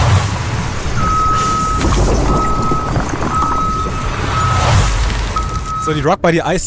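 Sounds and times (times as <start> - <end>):
loud rumbling tow truck engine: 0.0 - 6.6
outdoor noise: 0.0 - 6.6
tow truck reversing alarm beeping: 1.0 - 6.0
speech: 5.9 - 6.6.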